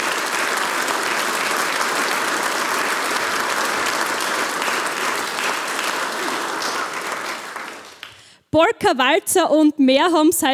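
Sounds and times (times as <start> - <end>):
large audience applause at a harmonica competition: 0.0 - 8.3
speech: 8.6 - 10.5.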